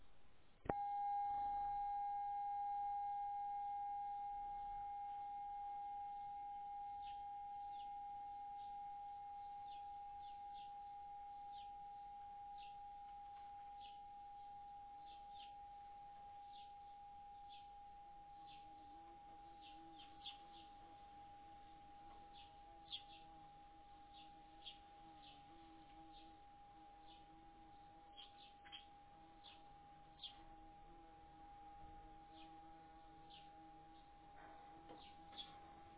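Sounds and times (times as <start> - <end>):
bronze singing bowl ringing: 0.7 - 35.9.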